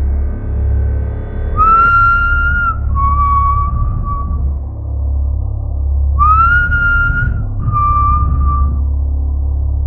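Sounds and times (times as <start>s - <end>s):
steady low rumble of noise: 0.0s - 9.8s
man whistling a tune: 1.6s - 4.4s, 6.2s - 8.8s.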